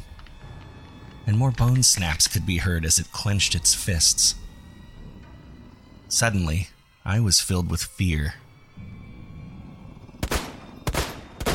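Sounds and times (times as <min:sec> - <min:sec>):
speech: 0:01.3 - 0:04.4, 0:06.1 - 0:08.9
gunshots fired from a firearm into a creature's back: 0:10.2 - 0:11.5.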